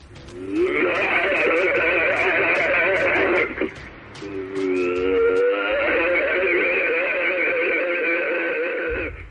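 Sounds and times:
alleged Sasquatch howl-like vocalizations: 0:00.4 - 0:03.7, 0:04.3 - 0:09.2
laughter: 0:00.6 - 0:09.2.

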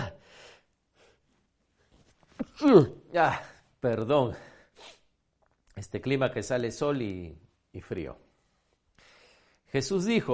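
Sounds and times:
faint rustling: 0:01.2 - 0:02.6
speech: 0:02.6 - 0:04.9, 0:05.8 - 0:08.2, 0:09.7 - 0:10.3
person sneezing: 0:04.8 - 0:05.1.

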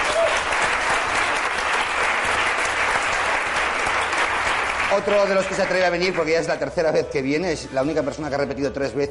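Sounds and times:
live audience applause: 0:00.0 - 0:06.6
speech: 0:04.9 - 0:09.0.

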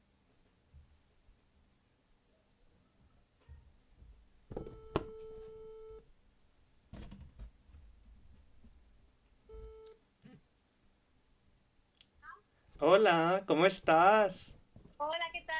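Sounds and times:
electronic ringback tone of an outgoing phone call: 0:04.6 - 0:06.0
speech: 0:12.9 - 0:14.6.

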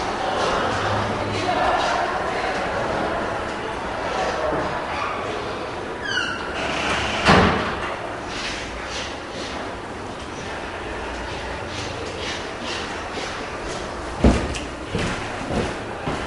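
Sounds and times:
steady wash of noise: 0:00.0 - 0:16.2
door creaking on its hinges: 0:06.0 - 0:07.9
door shutting with a solid thud: 0:06.7 - 0:07.8.

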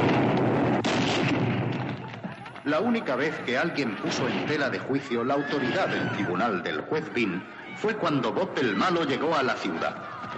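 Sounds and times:
gunshots from a rider on horseback in a western film: 0:00.0 - 0:06.3
laughter: 0:01.8 - 0:10.3
speech: 0:02.6 - 0:10.3.

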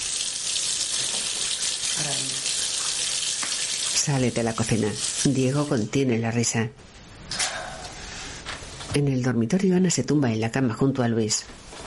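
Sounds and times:
tap water pouring into a sink: 0:00.0 - 0:05.8
speech: 0:04.0 - 0:06.9, 0:08.9 - 0:11.6.

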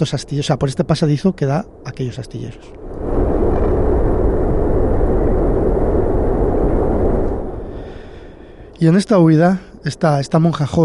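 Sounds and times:
speech: 0:00.0 - 0:03.2, 0:08.8 - 0:10.8
gunpowder barrel explosion blowing apart a convent: 0:01.6 - 0:08.9.

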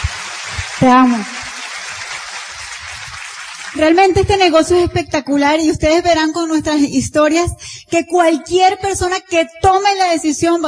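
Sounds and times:
large crowd applauding: 0:00.0 - 0:03.9
speech: 0:00.8 - 0:01.4, 0:03.7 - 0:10.6.

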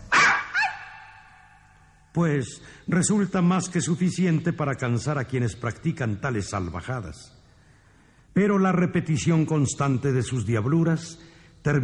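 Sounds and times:
person barking like a dog: 0:00.0 - 0:01.5
high-pitched yelp: 0:00.0 - 0:01.6
speech: 0:02.1 - 0:07.4, 0:08.4 - 0:11.8.

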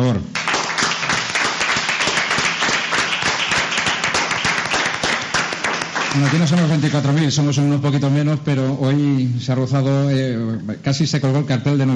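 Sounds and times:
speech: 0:00.1 - 0:00.4, 0:06.2 - 0:11.9
audience applause, strong ovation: 0:00.4 - 0:07.2.

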